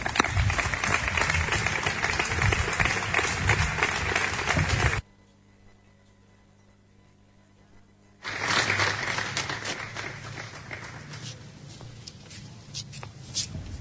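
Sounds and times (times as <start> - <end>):
large audience applauding a presenter: 0.0 - 5.0, 8.2 - 11.6.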